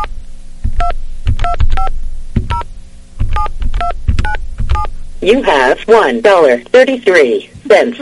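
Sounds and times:
payphone keypad dialing tones: 0:00.8 - 0:01.9, 0:03.3 - 0:04.9
speech: 0:05.2 - 0:08.0.

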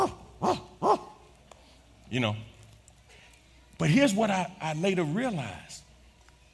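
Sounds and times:
human voice imitating a dog barking: 0:00.0 - 0:01.2
speech: 0:02.1 - 0:02.5, 0:03.8 - 0:05.8.

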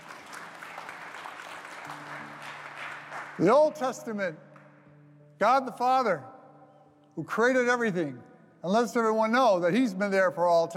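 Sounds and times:
room full of people clapping: 0:00.0 - 0:04.8
speech: 0:03.4 - 0:04.5, 0:05.4 - 0:06.3, 0:07.2 - 0:10.7.

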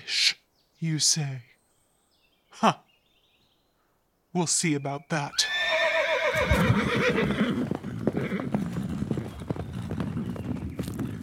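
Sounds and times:
speech: 0:00.8 - 0:01.5, 0:02.6 - 0:02.9, 0:04.4 - 0:05.5, 0:06.3 - 0:07.7
horse whinny: 0:05.3 - 0:10.4
horses' hooves of an army riding away: 0:06.4 - 0:11.2.

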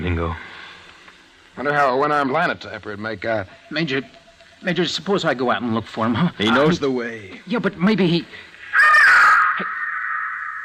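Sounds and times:
speech: 0:00.0 - 0:00.5, 0:01.6 - 0:08.5
crow cawing: 0:08.6 - 0:10.6.

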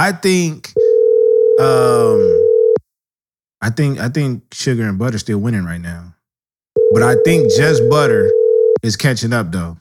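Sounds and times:
speech: 0:00.0 - 0:00.8, 0:01.6 - 0:02.4, 0:03.6 - 0:06.2, 0:06.9 - 0:09.7
phone call ringing tone: 0:00.8 - 0:02.8, 0:06.8 - 0:08.8.

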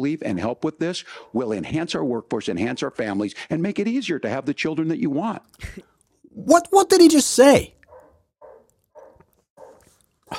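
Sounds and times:
speech: 0:00.0 - 0:07.8
dog barking: 0:07.8 - 0:09.9.

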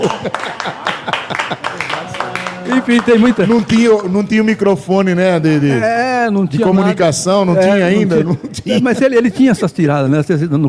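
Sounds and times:
speech: 0:00.0 - 0:01.6, 0:02.7 - 0:10.6
laughter: 0:00.0 - 0:04.2, 0:07.6 - 0:09.7
applause from a few people: 0:00.0 - 0:04.3.

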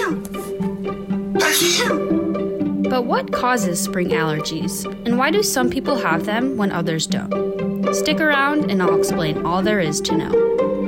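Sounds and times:
person with spring allergies sneezing: 0:00.0 - 0:00.6, 0:01.4 - 0:02.1
speech: 0:03.0 - 0:10.7.

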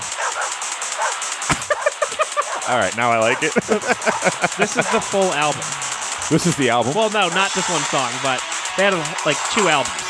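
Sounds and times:
dogs barking and yipping as vocals in a song: 0:00.0 - 0:06.4
song musical backing: 0:00.0 - 0:10.0
laughter: 0:01.4 - 0:10.0
speech: 0:02.7 - 0:10.0.

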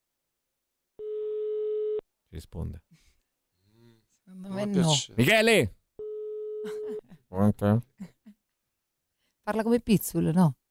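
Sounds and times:
telephone ringing tone on outgoing call: 0:01.0 - 0:02.0, 0:06.0 - 0:07.0
speech: 0:02.3 - 0:03.1, 0:04.3 - 0:05.8, 0:06.6 - 0:08.1, 0:09.5 - 0:10.6.

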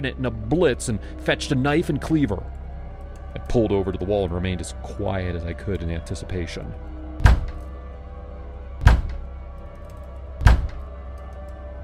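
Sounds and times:
speech: 0:00.0 - 0:02.6, 0:03.4 - 0:07.4
large powerful fists banging on a door: 0:07.2 - 0:07.6, 0:08.8 - 0:09.2, 0:10.4 - 0:10.8.

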